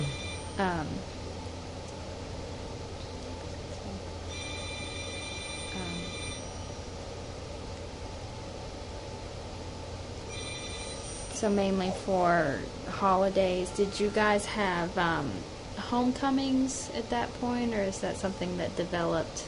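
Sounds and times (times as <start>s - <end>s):
telephone ringing with electronic tones: 0.0s - 0.6s, 4.3s - 6.8s, 10.3s - 11.4s
constant low room hum: 0.0s - 19.4s
speech: 0.6s - 1.2s, 11.4s - 19.4s.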